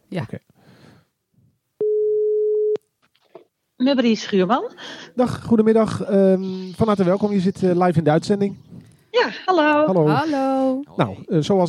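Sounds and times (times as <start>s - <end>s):
speech: 0.1s - 0.5s, 3.8s - 8.6s, 9.2s - 11.6s
phone ringback tone while a call connects: 1.8s - 2.8s.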